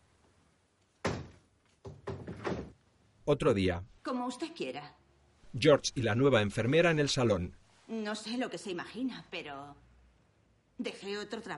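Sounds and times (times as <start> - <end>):
window knocking and rattling as it shuts: 1.0 - 2.8
speech: 3.3 - 9.8, 10.8 - 11.5.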